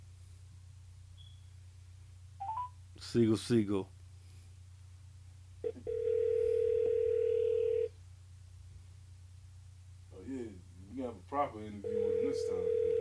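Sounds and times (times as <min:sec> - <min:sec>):
telephone ringing tone while calling someone: 0:02.4 - 0:02.7, 0:05.6 - 0:07.9, 0:11.8 - 0:13.0
speech: 0:03.0 - 0:04.0.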